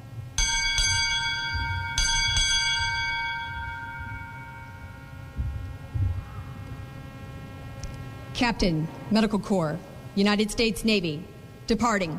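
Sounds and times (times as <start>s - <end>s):
ship's bell struck at a United States Navy change of command ceremony: 0.4s - 5.8s
speech: 8.4s - 12.1s.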